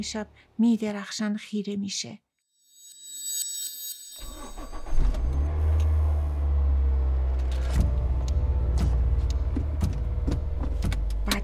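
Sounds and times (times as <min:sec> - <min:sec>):
speech: 0:00.0 - 0:02.2
car engine starting: 0:04.2 - 0:11.4.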